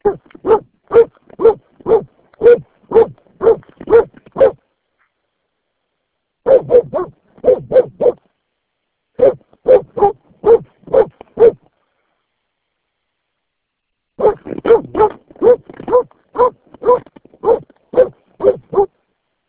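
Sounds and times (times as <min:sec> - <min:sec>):
dog barking: 0:00.0 - 0:04.6, 0:06.4 - 0:08.2, 0:09.2 - 0:11.6, 0:14.2 - 0:18.9.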